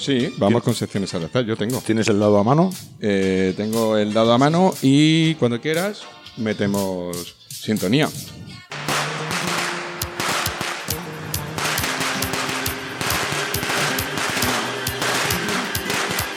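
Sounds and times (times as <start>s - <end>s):
speech: 0.0s - 8.4s
firecrackers bursting during mid-June festivities: 8.7s - 16.3s.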